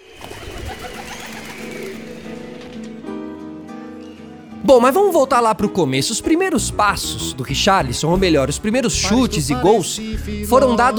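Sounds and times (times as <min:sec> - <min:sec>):
pigeon cooing in low throaty murmurs: 0:00.0 - 0:03.2
speech: 0:04.7 - 0:10.9.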